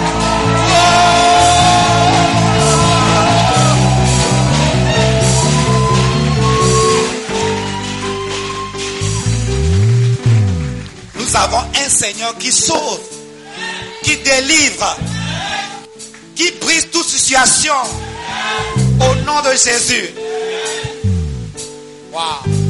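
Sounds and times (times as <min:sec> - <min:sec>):
church congregation shouting and cheering in praise: 0:00.0 - 0:09.4, 0:13.4 - 0:15.9, 0:17.7 - 0:19.3, 0:20.2 - 0:21.1
music: 0:00.0 - 0:22.6
speech: 0:12.1 - 0:13.1, 0:14.3 - 0:15.1, 0:16.4 - 0:20.7, 0:22.2 - 0:22.6.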